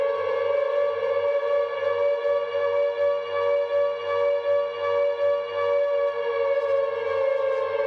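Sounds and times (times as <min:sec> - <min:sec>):
air-raid siren wailing: 0:00.0 - 0:07.8.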